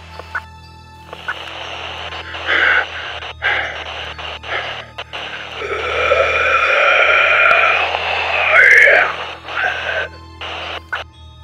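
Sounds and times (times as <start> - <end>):
harsh radio static: 0.0 - 0.4, 1.1 - 11.0
uneven gasping breaths: 2.2 - 10.2
long distorted monstrous scream: 4.5 - 10.2.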